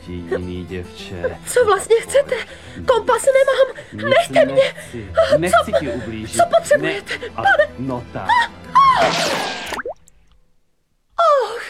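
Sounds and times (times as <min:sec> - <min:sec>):
speech: 0:00.1 - 0:09.6
bullet plopping into a river: 0:09.0 - 0:10.2.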